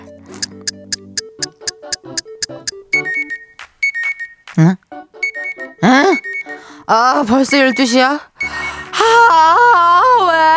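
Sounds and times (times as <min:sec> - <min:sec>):
alarm clock bright electronic beeping melody: 0:00.4 - 0:02.7
alarm clock sharp clicking ticks: 0:00.4 - 0:02.8
speech: 0:04.6 - 0:04.8, 0:05.8 - 0:06.2, 0:06.9 - 0:10.5.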